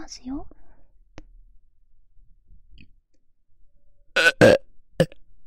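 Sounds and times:
speech: 0.1 - 0.6
loud burp right against the microphone: 4.2 - 5.2.

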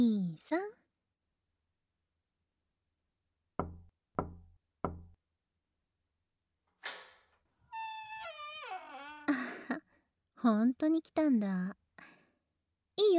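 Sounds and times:
speech: 0.0 - 0.8, 10.4 - 11.8
slow knocking on the door of a private room: 3.6 - 5.2.

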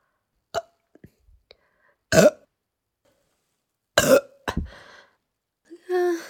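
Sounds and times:
loud burps: 2.1 - 2.5, 4.0 - 4.4.

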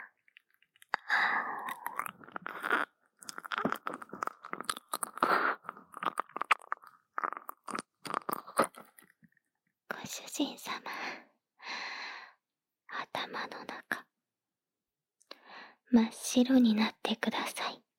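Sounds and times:
wet licking and smacking mouth sounds: 0.3 - 9.1
speech: 10.4 - 11.3, 15.9 - 17.7.

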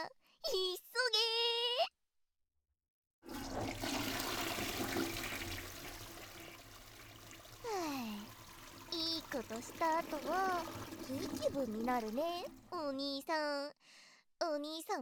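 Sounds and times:
speech: 0.0 - 1.3, 9.4 - 15.0
toilet flushing: 3.2 - 12.8.

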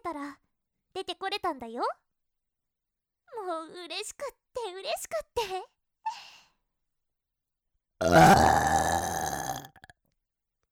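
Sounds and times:
speech: 1.0 - 2.0, 3.3 - 6.2, 8.0 - 8.8
tiny gulps: 8.0 - 9.9
long loud deliberately performed voiced burp: 8.0 - 10.0.

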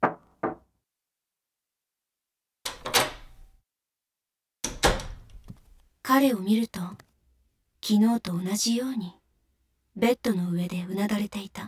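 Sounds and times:
knocking on a wooden bedroom door: 0.0 - 0.7
speech: 6.1 - 7.1, 7.8 - 9.2, 10.0 - 11.6.

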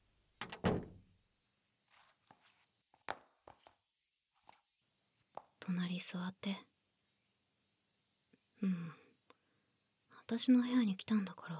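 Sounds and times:
faint steady hiss: 0.0 - 11.5
door shutting with a solid thump: 0.4 - 1.1
speech: 5.7 - 6.7, 10.3 - 11.5.

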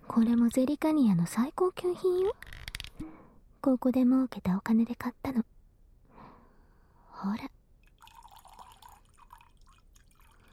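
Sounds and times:
speech: 0.2 - 5.5, 7.2 - 7.6
top-grade wine pouring into a glass: 7.8 - 10.5.

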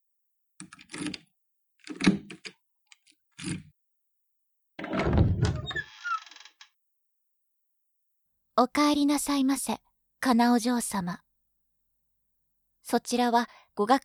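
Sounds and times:
door lock clunks and clicks: 4.8 - 5.9
door creaking and rattling open: 4.8 - 6.7
speech: 8.6 - 11.2, 12.8 - 14.0.

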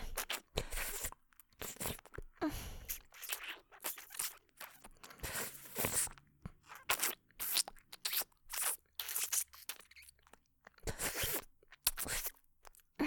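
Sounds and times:
chocolate candy crunching while bitten and chewed: 0.2 - 12.9.

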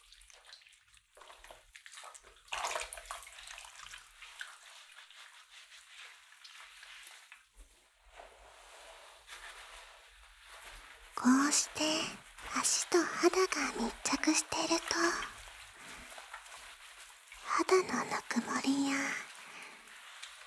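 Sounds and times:
wet swishing and squelching of slippery lather and water during washing: 0.0 - 20.4
speech: 11.2 - 15.4, 17.8 - 19.3.

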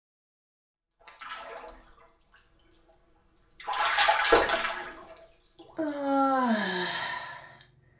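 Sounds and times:
hot bath water sloshing as someone soaks in a bathtub: 1.0 - 6.8
bath water splashing surge: 1.1 - 6.0
long voiced sigh: 5.8 - 7.6.

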